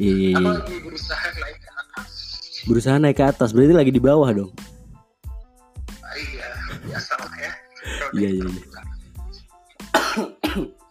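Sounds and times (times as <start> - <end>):
speech: 0.0 - 4.7, 8.1 - 8.7, 10.2 - 10.8
laughter: 0.3 - 2.2, 6.2 - 8.8
person coughing over a telephone headset: 9.9 - 10.8.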